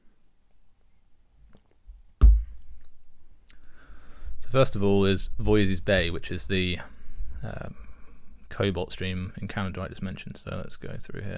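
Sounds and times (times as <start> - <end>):
low thump: 2.2 - 2.6
speech: 4.5 - 7.8, 8.6 - 11.3.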